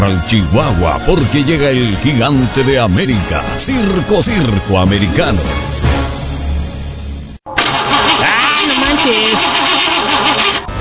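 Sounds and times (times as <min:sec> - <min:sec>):
speech: 0:00.1 - 0:05.8
car engine cranking but failing to start after new engine seals and spark plugs fitted: 0:07.5 - 0:10.7.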